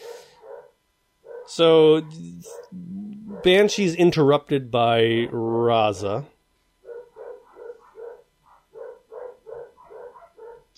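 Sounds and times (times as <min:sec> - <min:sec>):
dogs barking: 0:00.0 - 0:03.9, 0:06.8 - 0:10.7
speech: 0:01.5 - 0:06.3.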